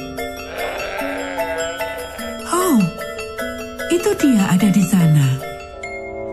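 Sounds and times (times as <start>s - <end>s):
lamb bleating: 0.4s - 2.4s
speech: 4.0s - 5.5s.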